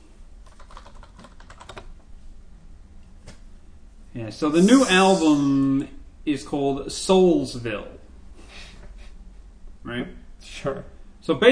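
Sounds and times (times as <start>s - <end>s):
steady low hum: 0.0s - 11.5s
typing on a computer keyboard: 0.4s - 1.9s
speech: 4.2s - 8.0s, 10.0s - 11.5s.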